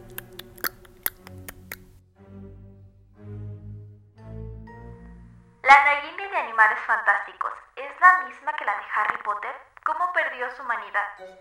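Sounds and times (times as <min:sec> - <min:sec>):
tongue clicks imitating clopping hooves: 0:00.0 - 0:02.0
speech: 0:06.6 - 0:07.4, 0:08.0 - 0:11.3.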